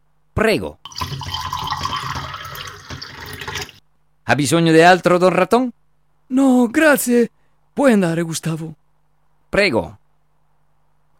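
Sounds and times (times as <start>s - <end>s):
speech: 0.4s - 1.3s, 4.3s - 8.8s, 9.5s - 10.0s
Scotch whisky poured straight without ice into a glass: 0.9s - 3.8s.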